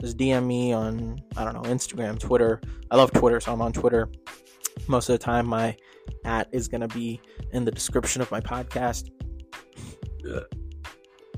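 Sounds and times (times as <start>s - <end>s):
speech: 0.0s - 9.2s, 10.2s - 10.6s
loud throaty burps: 10.2s - 10.6s.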